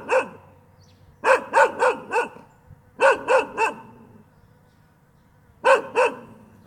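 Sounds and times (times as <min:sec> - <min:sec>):
dog barking: 0:00.0 - 0:00.5, 0:01.2 - 0:04.1, 0:05.6 - 0:06.5.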